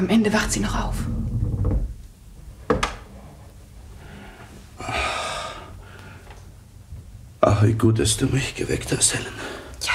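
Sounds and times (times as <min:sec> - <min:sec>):
speech: 0:00.0 - 0:01.2, 0:07.6 - 0:09.6
low rumble: 0:00.2 - 0:02.6.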